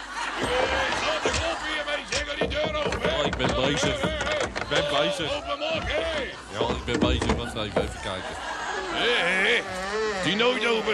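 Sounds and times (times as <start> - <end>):
busy noise: 0.0 - 10.9
laughter: 0.0 - 10.9
overlapping voices: 0.0 - 10.9
sharp wooden raps on a door: 2.2 - 8.2
speech: 3.4 - 10.9.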